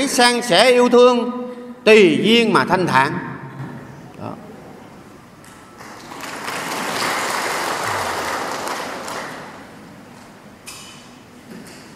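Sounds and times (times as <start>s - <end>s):
speech: 0.0s - 3.3s
audience applause at a Buddhist dharma talk: 5.8s - 9.8s.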